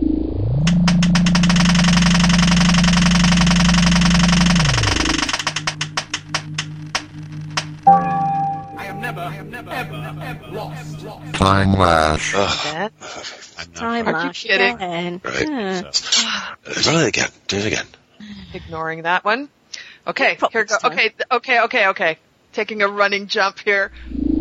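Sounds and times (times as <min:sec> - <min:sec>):
spinning prize wheel ticking as it slows: 0:00.7 - 0:06.6
knocks and clatters: 0:00.7 - 0:07.8
spinning prize wheel whirring: 0:00.7 - 0:09.2
laughter: 0:08.8 - 0:16.4
speech: 0:09.8 - 0:24.2.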